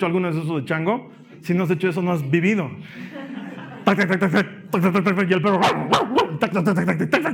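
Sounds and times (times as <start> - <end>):
speech: 0.0 - 7.3
laughter: 2.9 - 5.2
person imitating a dog barking: 5.6 - 7.3.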